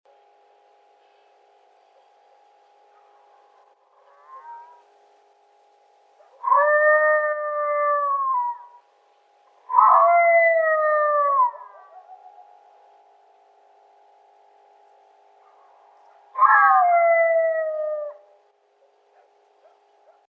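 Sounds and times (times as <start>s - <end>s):
dehissed howl: 3.0s - 4.9s, 6.2s - 8.8s, 9.6s - 12.6s, 15.6s - 18.4s.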